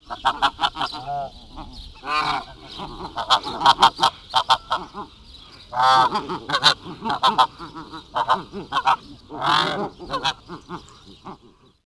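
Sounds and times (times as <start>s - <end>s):
Snow Goose: 0.0s - 11.6s.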